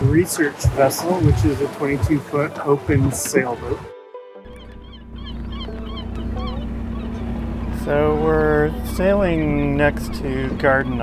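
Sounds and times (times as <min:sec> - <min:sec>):
speech: 0:00.2 - 0:03.9, 0:07.9 - 0:11.0
gull and cormorant colony squawking and crying: 0:04.5 - 0:11.0
steady low rumble: 0:04.5 - 0:11.0.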